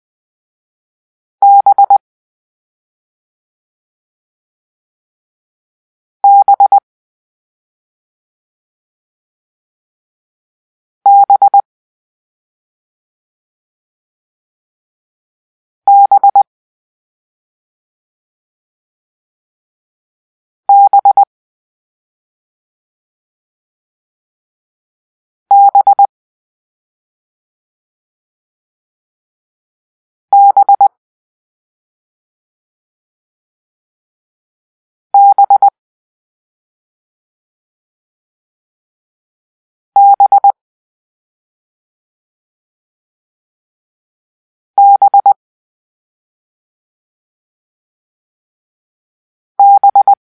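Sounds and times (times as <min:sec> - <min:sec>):
morse code beeps for letter B: 0:01.4 - 0:02.0, 0:06.2 - 0:06.8, 0:11.1 - 0:11.6, 0:15.9 - 0:16.4, 0:20.7 - 0:21.3, 0:25.5 - 0:26.1, 0:30.4 - 0:30.9, 0:35.2 - 0:35.7, 0:40.0 - 0:40.6, 0:44.8 - 0:45.4, 0:49.6 - 0:50.2.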